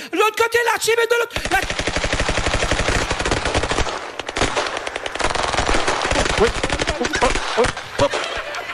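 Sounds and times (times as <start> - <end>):
speech: 0.3 - 2.1, 6.4 - 8.3
rapid automatic gunfire aimed at a shooting target in a shooting competition: 1.3 - 8.4
laughter: 6.2 - 8.7.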